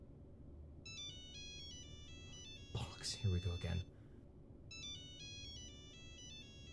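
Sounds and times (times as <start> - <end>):
low hum: 0.0 - 6.7
mobile phone ringtone playing a repeating electronic melody: 0.9 - 3.9, 4.7 - 6.7
speech: 3.0 - 4.0.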